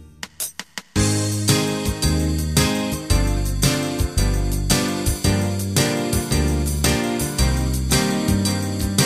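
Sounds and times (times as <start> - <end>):
70s radio pop music: 1.0 - 9.0.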